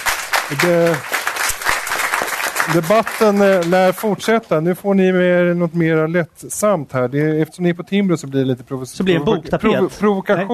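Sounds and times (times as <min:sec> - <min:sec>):
audience at a debate event applauding: 0:00.0 - 0:04.2
speech: 0:00.5 - 0:01.2, 0:02.6 - 0:10.5.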